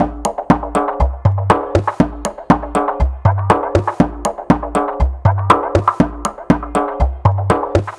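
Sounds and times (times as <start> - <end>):
conga loop: 0.0 - 7.9.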